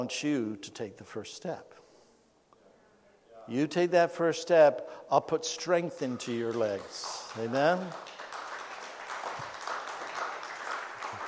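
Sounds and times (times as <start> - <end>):
speech: 0.0 - 1.8, 3.5 - 8.2
light scattered applause from an audience: 6.0 - 11.2.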